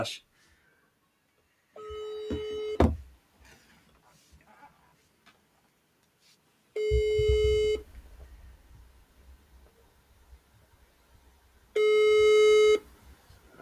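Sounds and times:
faint low noise: 0:00.0 - 0:13.6
ringback tone of an outgoing telephone call: 0:01.8 - 0:02.9, 0:06.8 - 0:07.8, 0:11.8 - 0:12.8.

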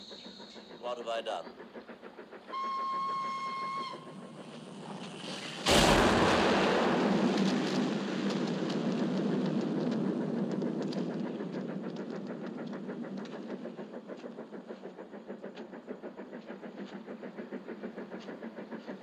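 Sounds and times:
steady whistle-like tone in a film scene: 0:00.0 - 0:00.9, 0:02.5 - 0:04.2
speech: 0:00.9 - 0:01.9
roaring crackling rumble of a collapsing bridge and crashing train: 0:04.4 - 0:13.8
loud explosion of a bridge being blown up: 0:05.7 - 0:09.7.

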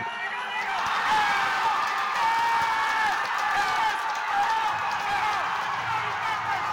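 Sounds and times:
large baseball stadium crowd roaring and cheering: 0:00.0 - 0:06.7.

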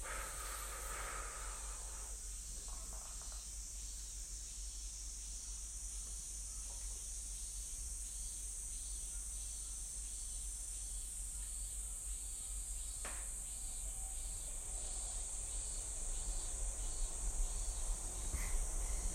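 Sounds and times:
rhythmic pulsing cicada calls: 0:00.0 - 0:19.1
robust cicada and minmin cicada chorus: 0:00.0 - 0:19.1.

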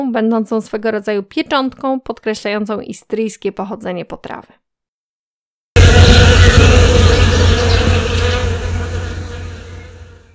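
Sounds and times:
speech: 0:00.0 - 0:04.6
bees and other insects buzzing under a blooming apple tree in Istria: 0:05.8 - 0:10.3.

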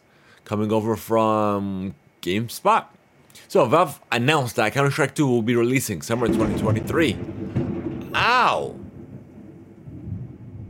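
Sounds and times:
speech: 0:00.5 - 0:07.4
rolling thunder: 0:06.1 - 0:10.6.

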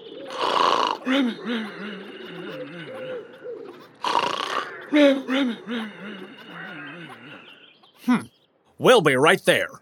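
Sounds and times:
exaggerated snore performed by a voice over the phone: 0:00.3 - 0:01.3, 0:04.0 - 0:05.2
speech: 0:01.0 - 0:02.5, 0:04.9 - 0:06.4, 0:08.0 - 0:09.7
laughter: 0:01.1 - 0:03.9, 0:04.8 - 0:08.2.

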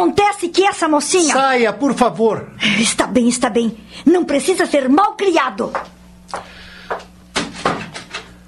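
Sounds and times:
speech: 0:00.0 - 0:06.5
faint steady hum: 0:00.0 - 0:08.4
door pulled shut with clunks and latch clicks: 0:07.3 - 0:08.3.

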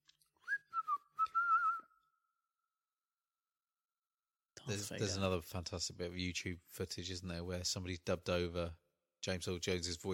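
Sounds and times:
person whistling a tune: 0:00.4 - 0:02.2
speech: 0:04.7 - 0:10.1.

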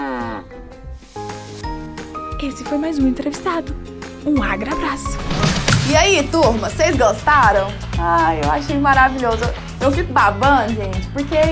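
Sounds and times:
person imitating a cow's moo: 0:00.0 - 0:00.7
speech: 0:02.4 - 0:11.5.

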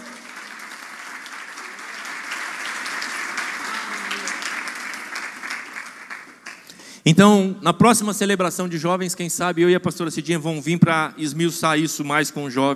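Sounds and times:
audience applauding: 0:00.0 - 0:06.8
speech: 0:07.1 - 0:12.7.

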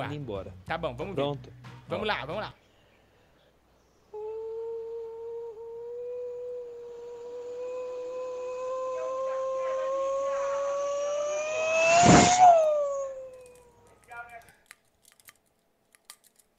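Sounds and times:
speech: 0:00.1 - 0:02.6
voice imitating race car passing by very fast: 0:04.2 - 0:13.9.

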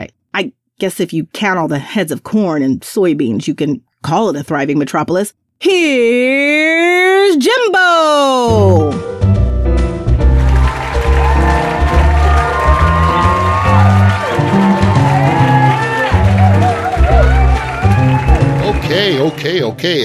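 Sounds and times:
speech: 0:00.0 - 0:09.2, 0:19.0 - 0:20.0
loud dense crowd cheering: 0:10.2 - 0:19.8
whoops and shouts from the crowd: 0:10.6 - 0:18.7.

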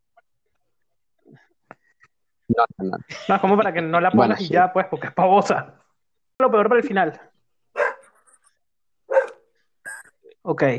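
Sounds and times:
speech: 0:02.5 - 0:05.8, 0:06.4 - 0:07.3, 0:10.5 - 0:10.7
dog barking: 0:07.7 - 0:08.2, 0:09.1 - 0:09.5.

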